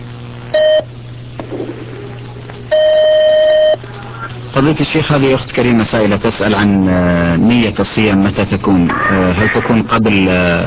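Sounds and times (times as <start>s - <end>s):
constant low hum: 0.0s - 9.6s
telephone ringing for an incoming call on a call-in line: 2.7s - 3.8s
speech: 4.6s - 10.6s.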